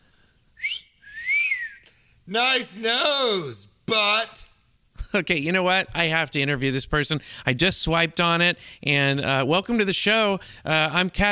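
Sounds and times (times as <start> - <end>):
whistled notes, short bright chirp and rising-and-falling tone: 0.6 - 2.0
speech: 2.3 - 4.5, 5.1 - 11.3.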